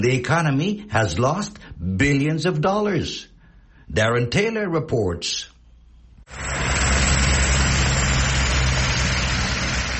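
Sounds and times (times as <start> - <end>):
speech: 0.0 - 3.3, 3.9 - 5.5, 6.3 - 6.6
police helicopter hovering overhead above a highway traffic jam near Durban: 6.3 - 9.9.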